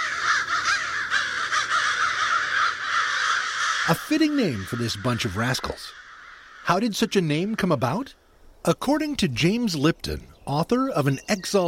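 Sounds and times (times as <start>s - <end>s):
crows cawing harshly: 0.0s - 7.1s
speech: 3.9s - 6.0s, 6.7s - 11.6s.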